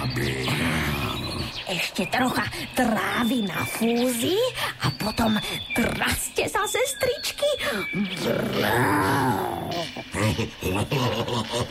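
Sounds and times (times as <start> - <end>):
low rumbling animal growl: 0.0 - 1.6, 8.1 - 10.8
speech: 1.7 - 11.7
laughter: 9.7 - 11.7.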